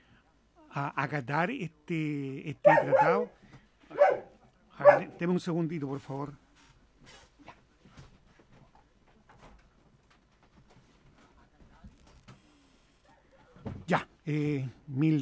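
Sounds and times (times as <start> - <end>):
speech: 0.8 - 3.4, 4.8 - 6.4, 13.9 - 15.1
restless dog stirring: 2.6 - 3.3, 4.0 - 5.2
dog barking: 2.6 - 5.2
soft clicks and shuffling: 6.5 - 13.8.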